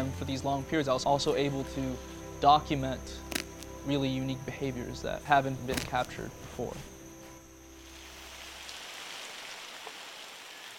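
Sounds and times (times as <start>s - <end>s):
speech: 0.3s - 6.9s
steady rain in the rainforest: 8.1s - 10.7s.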